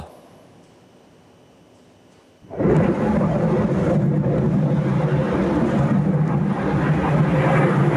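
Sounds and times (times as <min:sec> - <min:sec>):
F-16 fighter jet roaring on a training flight: 0:02.5 - 0:07.9.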